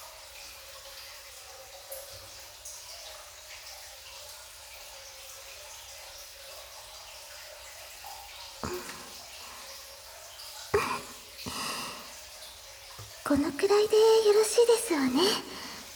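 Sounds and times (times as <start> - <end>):
soft scrubbing while washing in a bath: 8.6 - 9.7, 10.8 - 12.1, 13.0 - 15.9
quiet watery hiss: 8.6 - 10.0, 10.8 - 12.3, 13.0 - 15.9
speech: 13.3 - 15.6.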